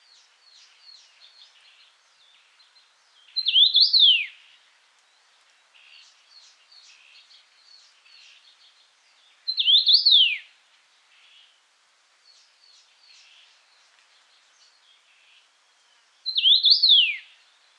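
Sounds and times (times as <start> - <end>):
Common rosefinch Carpodacus erythrinus singing a bright whistled phrase: 9.6 - 10.4, 16.3 - 17.2.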